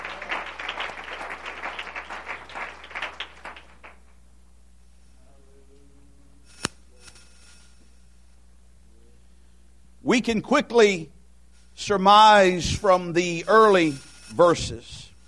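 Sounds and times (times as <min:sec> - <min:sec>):
church audience clapping during a worship service: 0:00.0 - 0:04.2
faint hum: 0:00.0 - 0:15.2
speech: 0:10.1 - 0:11.2, 0:11.8 - 0:15.0.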